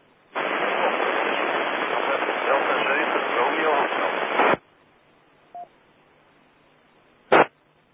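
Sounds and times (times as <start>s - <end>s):
crackling burst: 0.3s - 4.6s, 7.3s - 7.6s
radio static: 0.4s - 4.6s, 7.3s - 7.6s.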